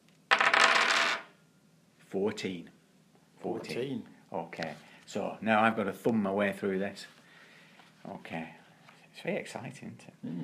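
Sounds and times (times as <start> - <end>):
six-sided dice rattling and tumbling across a hard surface: 0.3 - 1.3
speech: 2.1 - 2.8, 3.4 - 7.2, 8.0 - 8.6, 9.2 - 10.4.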